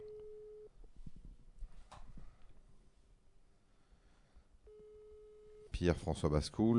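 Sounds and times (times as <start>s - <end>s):
telephone ringback tone on an outgoing call: 0.0s - 0.7s, 4.7s - 5.7s
speech: 5.8s - 6.7s.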